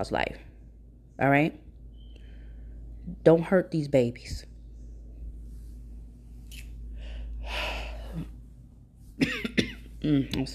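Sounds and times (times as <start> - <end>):
speech: 0.0 - 0.5, 1.2 - 1.6, 3.1 - 4.5, 9.2 - 10.5
low steady hum: 0.0 - 10.5
person clearing throat with a rough breathy rasp: 9.2 - 9.9
person coughing: 9.2 - 10.0.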